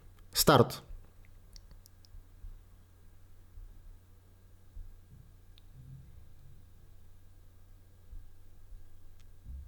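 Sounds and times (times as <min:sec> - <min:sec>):
faint broadband microphone hiss: 0:00.0 - 0:09.6
low electrical hum: 0:00.0 - 0:09.6
speech: 0:00.5 - 0:00.9.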